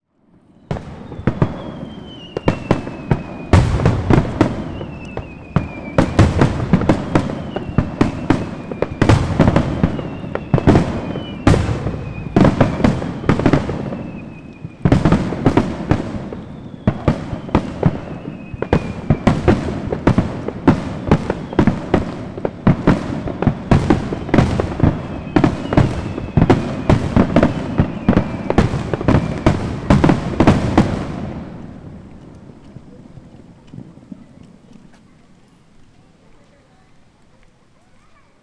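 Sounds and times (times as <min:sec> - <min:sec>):
aerial fireworks very close: 0:00.3 - 0:38.4.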